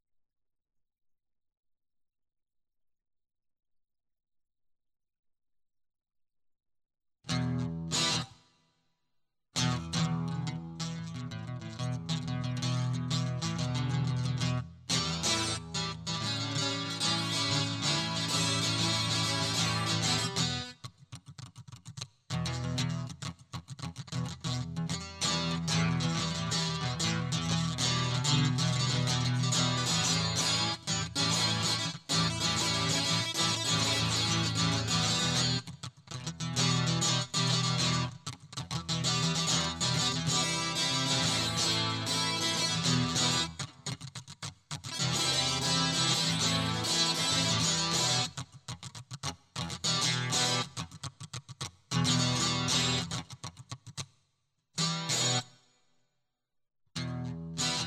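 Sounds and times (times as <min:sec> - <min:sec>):
guitar loop: 0:07.3 - 0:08.3, 0:09.6 - 0:20.8, 0:21.4 - 0:53.8, 0:54.8 - 0:55.5, 0:57.0 - 0:57.8.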